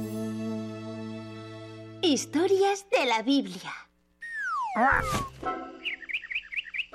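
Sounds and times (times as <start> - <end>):
speech: 2.0 - 3.9, 4.8 - 6.0
parrot learning to fly chirping: 4.2 - 6.9.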